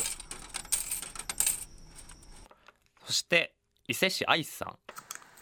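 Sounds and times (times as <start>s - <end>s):
coins clinking and dropping into a vending machine while buying juice: 0.0s - 2.5s
speech: 3.1s - 4.9s.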